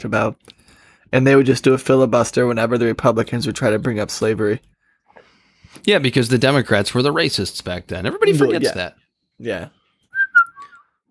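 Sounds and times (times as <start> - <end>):
speech: 0.0 - 4.7, 5.8 - 9.8
person whistling: 10.1 - 11.0.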